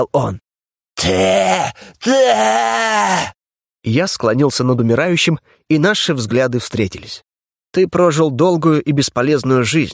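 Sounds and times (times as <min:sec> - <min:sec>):
speech: 0:00.0 - 0:00.4, 0:01.0 - 0:09.9
man groaning in pain: 0:01.0 - 0:03.4
man shrieking in pain: 0:01.0 - 0:03.4
man gasping: 0:01.6 - 0:02.2.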